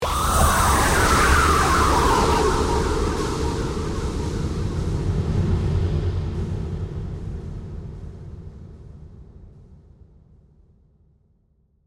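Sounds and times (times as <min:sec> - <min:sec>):
dark distorted horror scream with reverb: 0:00.0 - 0:05.9.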